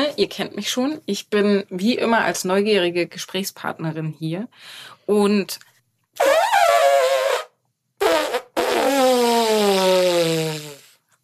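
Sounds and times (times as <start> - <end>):
speech: 0.1 - 6.5
farting: 6.2 - 11.0.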